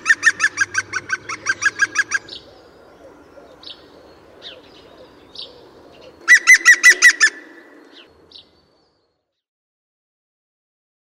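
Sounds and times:
European green woodpecker yaffling call: 0:00.0 - 0:08.1
faint other bird calls: 0:00.0 - 0:09.4.

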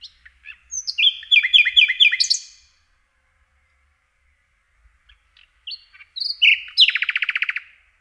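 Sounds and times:
common nightingale song with liquid chirps, whistled notes and rapid trill: 0:00.0 - 0:08.0.

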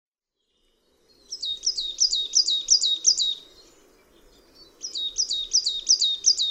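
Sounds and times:
marsh tit giving sharp high chirps: 0:01.3 - 0:03.6, 0:04.8 - 0:06.4.

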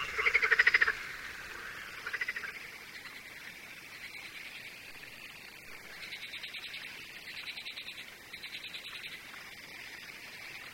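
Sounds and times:
marsh frog croaking in pulsed series: 0:00.0 - 0:03.4.

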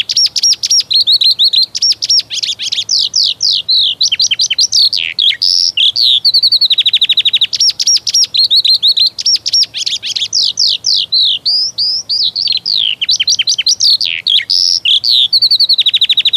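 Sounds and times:
Eurasian skylark high-pitched song: 0:00.0 - 0:16.3.

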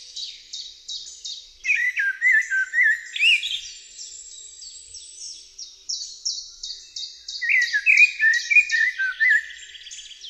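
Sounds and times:
common blackbird song: 0:00.0 - 0:10.2.

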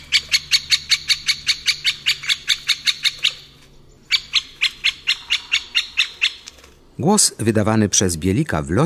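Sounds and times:
great spotted woodpecker calling: 0:00.0 - 0:07.0
speech: 0:07.0 - 0:08.8.

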